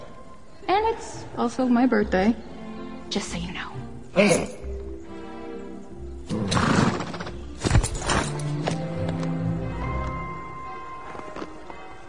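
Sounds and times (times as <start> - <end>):
speech: 0.8 - 2.5, 3.1 - 4.6
horse whinnying: 6.3 - 8.4
horse hooves clopping and shuffling: 6.3 - 12.0.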